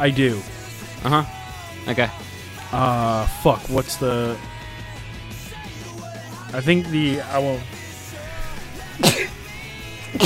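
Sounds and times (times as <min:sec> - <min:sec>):
speech: 0:00.0 - 0:04.6, 0:06.5 - 0:07.8
person sneezing: 0:09.0 - 0:09.4.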